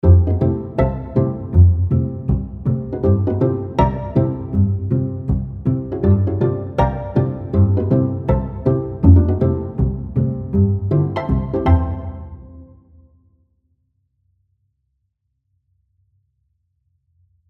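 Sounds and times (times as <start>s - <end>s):
solo pizzicato: 0.0s - 12.8s.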